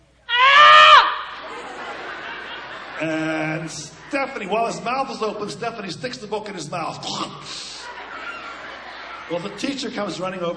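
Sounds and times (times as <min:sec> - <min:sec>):
person imitating a loud drawn-out yell: 0:00.3 - 0:01.4
laughter: 0:01.2 - 0:10.5
speech: 0:03.0 - 0:07.7, 0:09.3 - 0:10.5.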